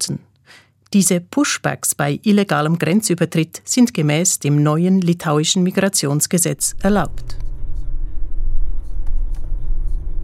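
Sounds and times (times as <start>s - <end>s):
speech: 0.0s - 7.4s
vehicle engine and tyres rumbling while driving through dense deserted forest: 6.7s - 10.2s.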